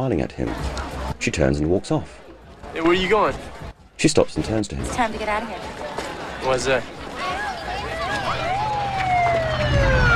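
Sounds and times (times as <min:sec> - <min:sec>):
speech: 0:00.0 - 0:07.0
police siren wailing: 0:07.3 - 0:10.1.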